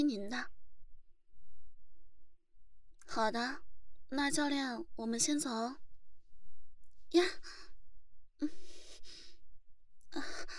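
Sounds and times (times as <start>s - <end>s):
speech: 0.0s - 0.6s, 3.1s - 5.8s, 7.1s - 7.7s, 8.4s - 8.8s, 10.1s - 10.5s
soft breathing from someone just behind another person: 8.4s - 10.5s.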